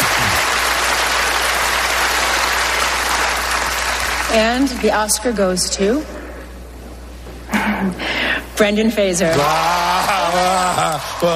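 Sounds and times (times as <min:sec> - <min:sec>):
large audience applause at awards ceremony: 0:00.0 - 0:04.9, 0:09.3 - 0:11.3
speech: 0:04.3 - 0:06.2, 0:07.8 - 0:11.3.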